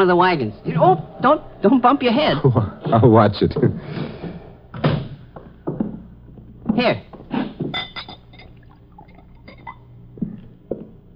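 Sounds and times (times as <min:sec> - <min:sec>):
speech: 0:00.0 - 0:04.1, 0:06.8 - 0:07.1
light glassy clinks: 0:07.8 - 0:08.6
drink poured into a glass: 0:08.1 - 0:09.8.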